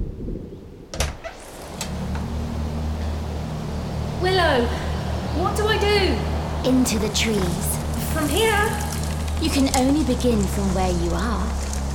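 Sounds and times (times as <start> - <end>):
door opening with a click and sliding whoosh: 0.9 - 2.3
low steady rumble: 1.4 - 11.9
speech: 4.6 - 4.8, 5.4 - 8.8, 9.4 - 11.7.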